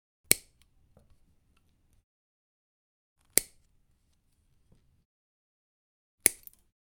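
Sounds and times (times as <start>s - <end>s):
wire cutters: 6.2s - 6.6s.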